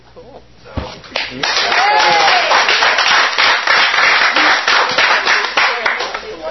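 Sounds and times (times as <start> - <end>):
speech: 0.2 - 1.9
loud dense applause from a group: 1.3 - 6.5.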